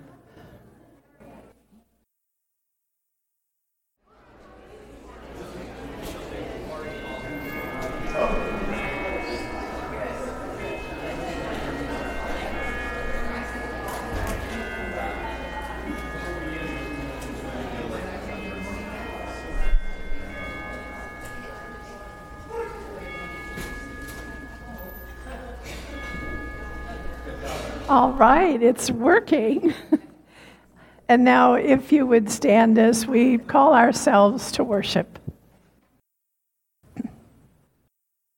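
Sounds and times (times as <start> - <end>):
murmur of many people chatting and greeting one another: 4.1 - 35.2
bright chimes ringing to end greeting time at a worship service: 6.8 - 30.6
speech: 27.9 - 29.9, 31.1 - 35.2.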